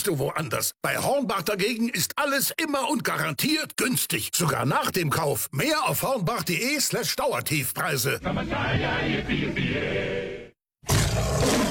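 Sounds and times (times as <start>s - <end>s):
speech: 0.0s - 11.6s
black lion roaring: 10.8s - 11.6s.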